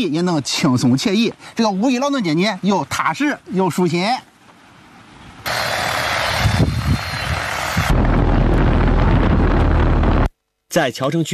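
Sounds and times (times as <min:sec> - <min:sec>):
speech: 0:00.0 - 0:04.3, 0:10.8 - 0:11.3
gusting wind noise: 0:04.6 - 0:10.3
crop-spraying drone rotor whine over wheat field: 0:05.5 - 0:10.3
deep rumble: 0:06.3 - 0:10.3.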